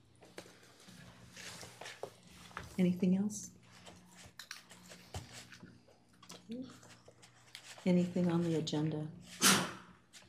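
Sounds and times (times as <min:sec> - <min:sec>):
speech: 0:02.8 - 0:03.6, 0:07.8 - 0:09.2
sneeze: 0:09.4 - 0:09.9.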